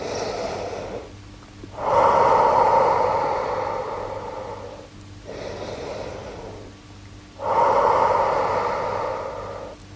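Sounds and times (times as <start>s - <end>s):
slow deep human breathing in and out: 0.0s - 6.8s, 7.4s - 9.9s.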